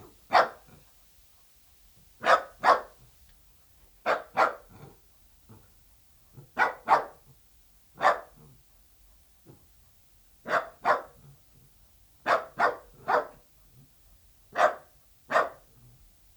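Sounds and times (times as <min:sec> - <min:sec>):
dachshund barking: 0:00.3 - 0:00.8, 0:02.2 - 0:03.0, 0:04.0 - 0:05.0, 0:06.4 - 0:07.2, 0:08.0 - 0:08.5, 0:10.4 - 0:11.3, 0:12.2 - 0:13.4, 0:14.5 - 0:15.7.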